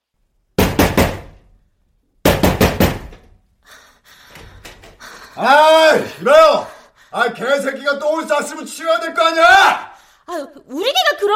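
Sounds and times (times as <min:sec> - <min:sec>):
neighbour knocking forcefully on an apartment front door: 0:00.6 - 0:01.4, 0:02.2 - 0:03.3
speech: 0:05.4 - 0:11.3.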